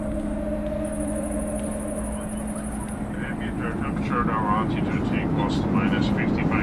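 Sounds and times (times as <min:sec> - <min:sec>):
airplane engine drone: 0:00.0 - 0:06.6
high whine of airplane: 0:00.0 - 0:06.6
voices: 0:02.1 - 0:06.6.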